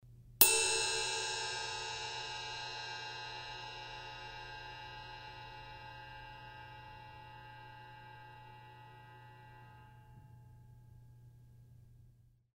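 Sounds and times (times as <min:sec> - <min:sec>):
rock crash cymbal: 0:00.4 - 0:10.2.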